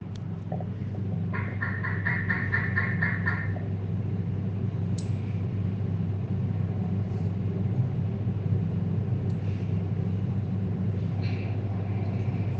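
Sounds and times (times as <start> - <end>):
steady heavy low rumble: 0.0 - 12.5
Reinwardt's flying frog clicking call: 1.3 - 3.6.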